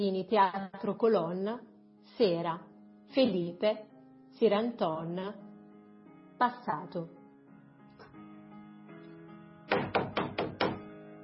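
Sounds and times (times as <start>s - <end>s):
speech: 0.0s - 5.4s, 6.4s - 7.2s
knocking on a dressing-room door in a theatre at night: 9.7s - 10.9s.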